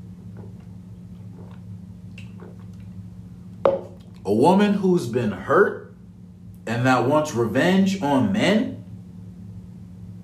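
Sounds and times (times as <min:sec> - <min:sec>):
sipping a drink of water: 0:00.0 - 0:04.3
low steady hum: 0:00.0 - 0:10.2
speech: 0:03.7 - 0:05.8, 0:06.7 - 0:08.8.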